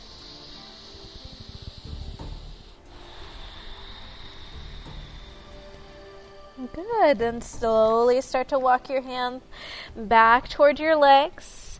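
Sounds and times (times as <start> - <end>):
deep breathing during a yoga session: 0.0 - 6.7, 9.5 - 10.0
steady hiss: 0.0 - 11.7
speech: 6.7 - 11.6.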